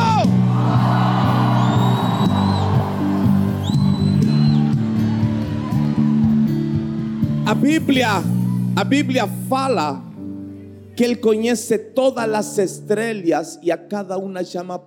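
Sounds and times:
large audience shouting and cheering: 0.0 - 8.8
speech: 7.5 - 10.1, 11.0 - 14.8.

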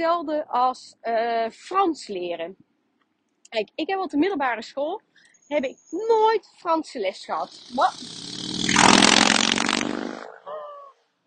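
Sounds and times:
speech: 0.0 - 2.7, 3.5 - 9.9
motorcycle roaring past: 7.4 - 10.4.

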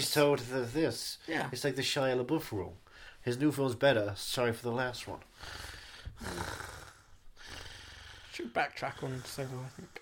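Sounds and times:
speech: 0.0 - 6.8, 8.4 - 10.0
heavy noisy breathing with rasping exhale: 5.3 - 10.0.

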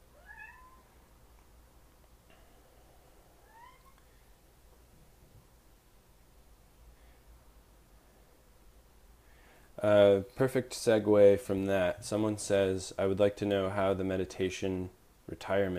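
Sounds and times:
steady hiss: 0.0 - 15.7
cat meowing faintly: 0.1 - 0.9, 3.4 - 4.0
speech: 9.8 - 15.7.

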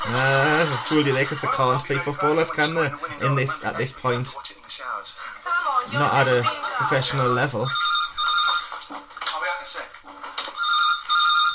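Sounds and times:
laughter: 0.0 - 4.2
speech: 0.1 - 7.8
telephone ringing with a shrill electronic trill: 6.0 - 11.5.

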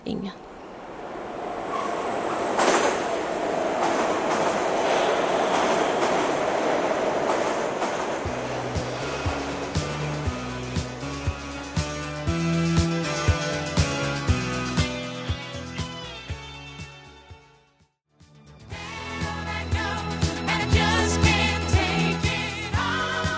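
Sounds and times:
speech: 0.1 - 0.5
metro train pulling away from a station platform: 0.4 - 16.2, 18.7 - 23.3
metro train wheels clickety-clack over rail joints: 1.4 - 11.3.

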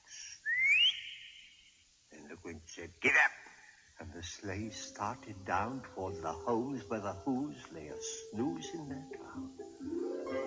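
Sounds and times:
person whistling to call a dog: 0.4 - 1.2
speech: 2.3 - 3.4, 4.0 - 10.0.

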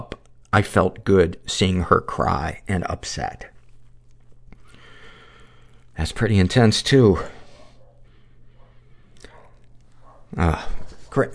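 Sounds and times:
speech: 0.0 - 3.5, 6.0 - 7.4, 10.3 - 11.3
low noise: 0.0 - 11.3
female dog barking sharply: 7.5 - 10.4.

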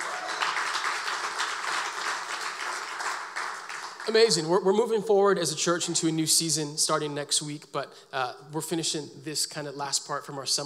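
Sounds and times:
church audience clapping hands in applause: 0.0 - 4.5
speech: 4.0 - 10.6.

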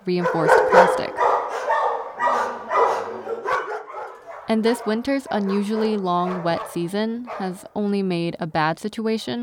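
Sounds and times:
speech: 0.0 - 1.2, 4.5 - 9.4
dogs barking in animal shelter kennels: 0.1 - 7.6.

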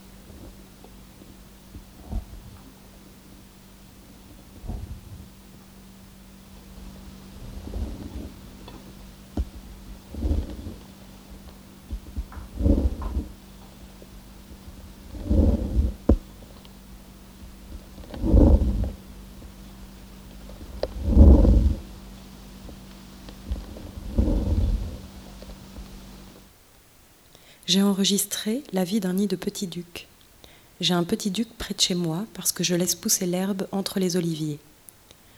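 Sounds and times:
steady electrical hum: 0.0 - 35.3
amplified snail recording of thumps and scraping: 1.2 - 2.8, 4.3 - 5.7, 7.4 - 16.6, 17.4 - 19.6, 22.6 - 26.5
speech: 27.7 - 30.1, 30.8 - 34.7.

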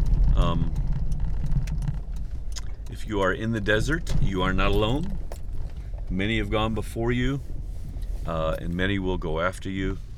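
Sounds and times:
steady low rumble: 0.0 - 10.1
speech: 3.1 - 5.2, 6.1 - 7.5, 8.2 - 10.1.

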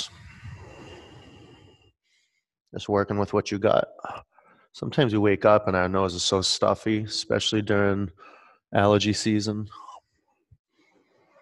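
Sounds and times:
ujjayi breath exhaled through the mouth: 0.0 - 2.4
speech: 2.7 - 9.9.

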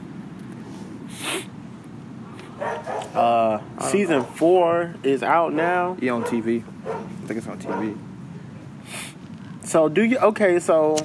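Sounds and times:
steady low hum: 0.0 - 11.0
dog barking: 2.6 - 3.2, 4.2 - 4.4, 6.1 - 8.0
speech: 3.8 - 8.1, 9.7 - 11.0.

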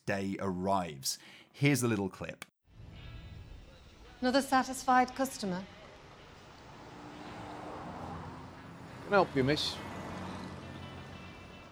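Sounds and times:
speech: 0.1 - 2.5, 4.2 - 5.8, 9.1 - 9.9
MGA 1500 sports car driving past: 5.0 - 11.7
sports car engine rumbling with a throaty drone: 5.9 - 11.7.

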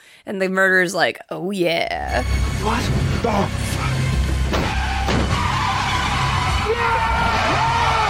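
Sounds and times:
speech: 0.3 - 3.8
impact bangs of car crashing into a truck: 4.4 - 6.5
car tires screeching and skidding: 4.5 - 8.0.

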